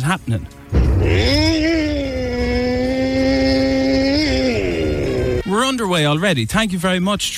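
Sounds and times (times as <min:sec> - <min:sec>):
speech: 0:00.0 - 0:02.0, 0:05.6 - 0:07.3
person imitating a chainsaw with their voice: 0:01.0 - 0:05.4.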